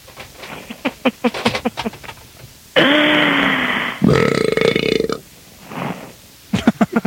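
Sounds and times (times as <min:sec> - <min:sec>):
voices laughing: 0:00.6 - 0:02.0, 0:06.5 - 0:07.0
long loud rumbling burp: 0:02.8 - 0:05.2.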